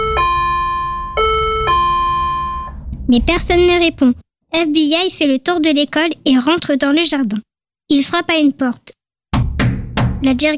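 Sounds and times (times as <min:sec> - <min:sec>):
electronic doorbell chime at a locked school gate: 0:00.0 - 0:02.8
speech: 0:03.1 - 0:09.0, 0:10.2 - 0:10.5.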